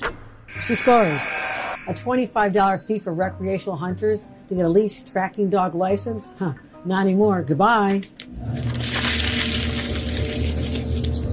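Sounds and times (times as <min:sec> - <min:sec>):
speech: 0:00.7 - 0:08.7
copy paper being crumpled: 0:08.2 - 0:11.3.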